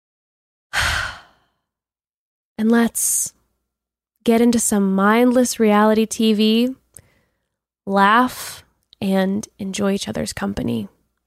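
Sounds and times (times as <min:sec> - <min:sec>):
person taking a deep breath: 0:00.7 - 0:01.5
speech: 0:02.6 - 0:03.4, 0:04.2 - 0:06.8, 0:07.9 - 0:11.0.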